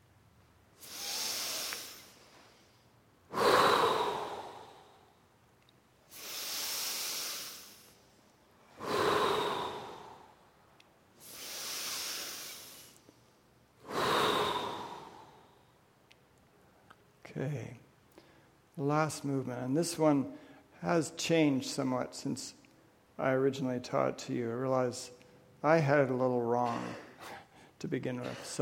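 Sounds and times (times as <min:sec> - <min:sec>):
slow deep integrative breathing from a guided breathing exercise: 0:00.8 - 0:05.3, 0:06.0 - 0:15.8
speech: 0:17.4 - 0:17.8, 0:18.8 - 0:22.6, 0:23.2 - 0:28.6.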